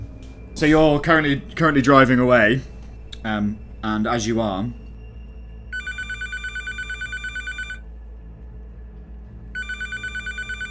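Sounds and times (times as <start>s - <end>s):
low rumbling hum: 0.0s - 10.6s
speech: 0.6s - 4.8s
satellite phone ringing: 5.7s - 7.8s, 9.6s - 10.6s.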